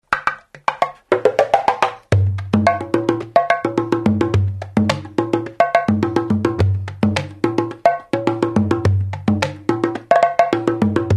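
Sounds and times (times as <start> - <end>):
groove beats: 0.2 - 11.1.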